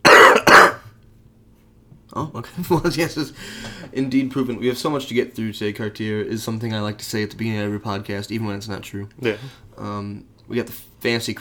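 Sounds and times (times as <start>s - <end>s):
person coughing after being sick: 0.0s - 0.9s
speech: 2.2s - 11.3s.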